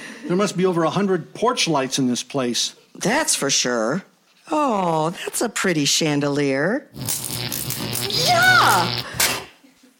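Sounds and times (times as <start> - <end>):
speech: 0.2 - 9.2
bug zapper zapping an insect: 7.0 - 9.5.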